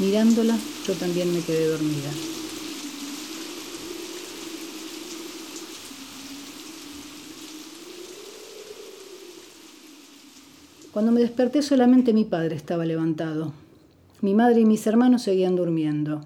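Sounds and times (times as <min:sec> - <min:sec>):
speech: 0:00.0 - 0:02.4, 0:11.0 - 0:13.6, 0:14.2 - 0:16.2
steady rain during a storm: 0:00.0 - 0:12.2.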